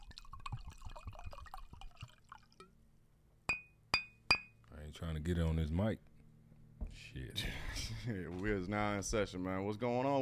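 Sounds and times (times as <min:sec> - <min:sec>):
drink poured slowly into a glass: 0:00.0 - 0:02.8
bright glass clinks: 0:03.5 - 0:04.6
speech: 0:04.9 - 0:06.1, 0:07.1 - 0:10.2.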